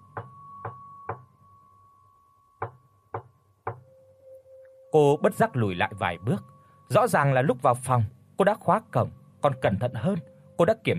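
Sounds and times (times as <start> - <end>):
faint steady tone: 0.0 - 10.9
knocking on a door: 2.6 - 3.8
speech: 4.9 - 10.9.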